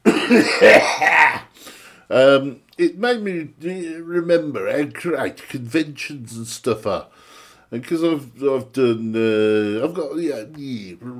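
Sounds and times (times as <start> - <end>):
harsh raspy coughs: 0.0 - 1.5
speech: 0.3 - 1.4, 2.1 - 11.1.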